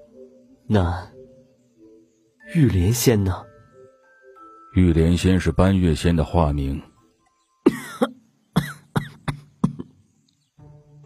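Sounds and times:
speech: 0.7s - 1.1s, 2.5s - 3.5s, 4.7s - 6.9s
man coughing: 7.7s - 10.0s.

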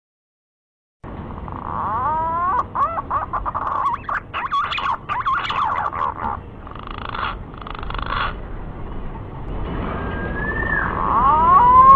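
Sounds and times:
green pigeon lure call with rising looping whistles and warbling: 1.6s - 8.3s, 9.9s - 11.9s.

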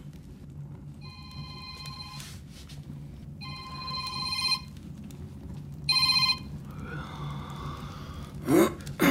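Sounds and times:
low hum: 0.0s - 9.0s
telephone ringing in a 1960s German radio play: 1.0s - 2.4s, 3.4s - 4.8s, 5.9s - 6.5s.

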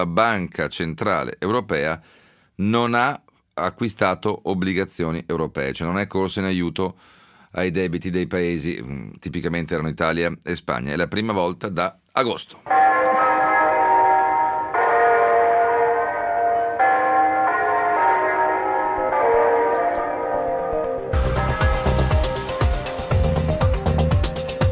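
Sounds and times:
speech: 0.0s - 12.8s
church bells ringing: 12.7s - 24.6s.

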